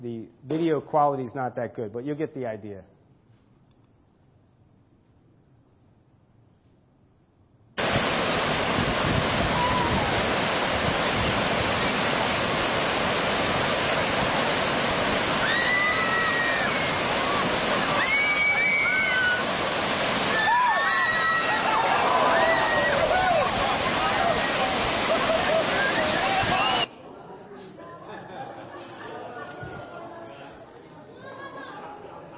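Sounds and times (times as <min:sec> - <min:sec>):
speech: 0:00.0 - 0:03.0
whitewater rapids roaring during a rafting trip: 0:07.8 - 0:26.9
people shouting over rushing water: 0:09.5 - 0:10.2, 0:15.4 - 0:19.6, 0:20.2 - 0:26.9
laughter: 0:21.5 - 0:32.3.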